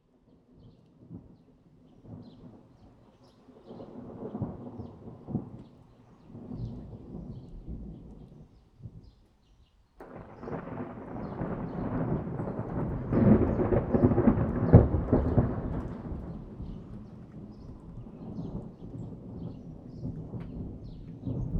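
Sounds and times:
thunder: 3.6s - 5.7s, 6.3s - 9.1s, 10.0s - 21.5s.

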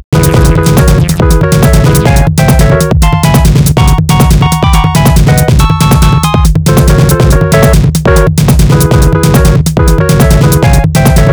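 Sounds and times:
boss fight background music for games: 0.2s - 11.3s.

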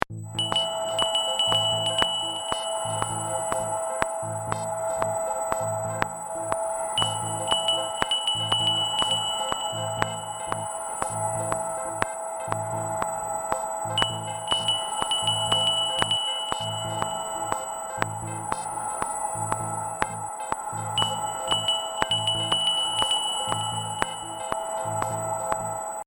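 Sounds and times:
winning screen jingle: 0.4s - 26.0s.

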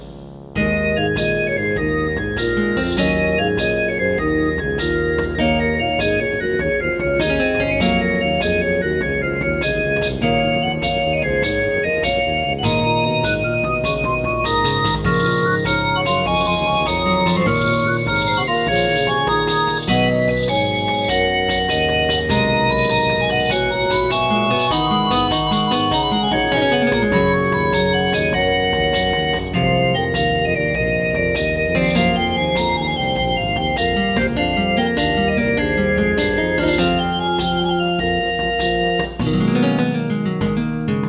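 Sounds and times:
tiny organ melody: 0.6s - 41.0s.

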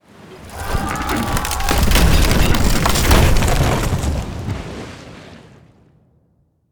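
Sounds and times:
ship ramming ship: 0.4s - 5.1s.

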